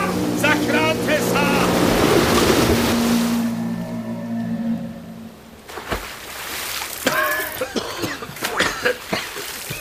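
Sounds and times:
low drawn-out groaning tones: 0.0 - 5.7
loud roaring rush of river water: 0.0 - 9.8.

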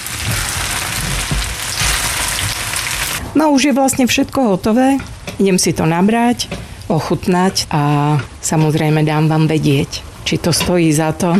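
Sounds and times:
spinach leaves and peas stewing in a pan with pasta water and lemon juice: 0.0 - 3.2
speech: 3.4 - 11.3.

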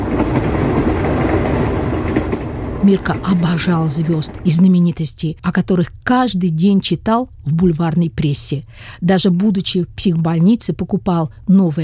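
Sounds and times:
express train rumbling as it slows approaching a station: 0.0 - 6.0
speech: 2.9 - 11.8.

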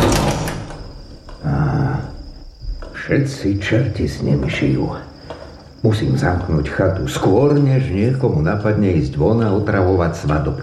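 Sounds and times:
sliding door closing with a rumbling scrape: 0.0 - 1.3
speech: 3.1 - 5.1, 5.8 - 10.6.

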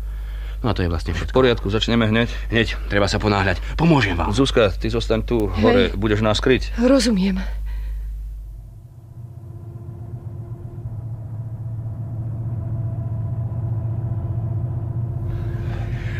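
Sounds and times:
speech: 0.6 - 7.6
distant car engines rumbling on a road: 9.1 - 16.1.

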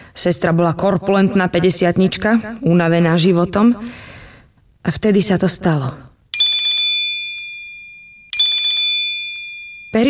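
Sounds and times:
speech: 0.2 - 4.1, 4.8 - 6.1
mobile phone ringing with an incoming call from an unknown number: 6.4 - 10.0.

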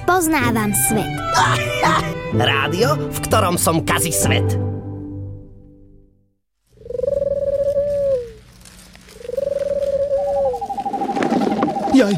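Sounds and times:
speech: 0.1 - 4.7, 12.0 - 12.1
owl hooting: 6.8 - 12.1.

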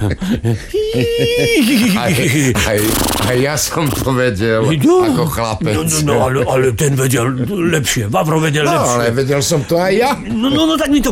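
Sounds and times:
laughter: 0.0 - 2.9, 5.2 - 7.8
speech: 0.0 - 11.1
person imitating a horse neighing: 0.7 - 2.1.

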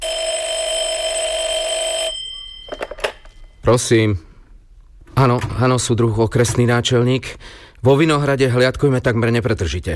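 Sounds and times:
telephone ringing with a loud electronic tone in an office: 0.0 - 3.6
speech: 3.6 - 4.3, 5.2 - 9.9.

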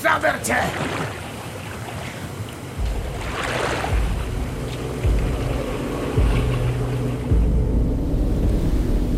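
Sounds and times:
rushing river current: 0.0 - 8.6
speech: 0.1 - 1.1.

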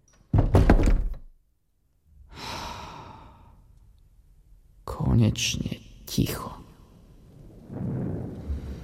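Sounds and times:
door shut firmly with a heavy thump: 0.3 - 1.3
long soft breath: 2.3 - 3.7, 8.4 - 8.8
speech: 5.2 - 6.6.

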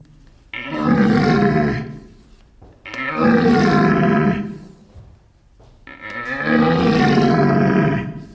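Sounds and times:
red deer stag rutting roar imitated by person grunting into two-pipe caller: 0.5 - 2.2, 2.9 - 4.8, 5.9 - 8.3.

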